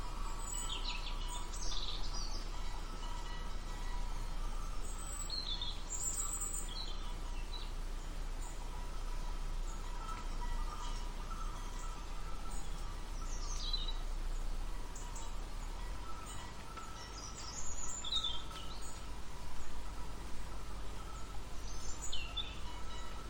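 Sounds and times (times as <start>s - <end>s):
birds chirping and tweeting: 0.0s - 23.2s.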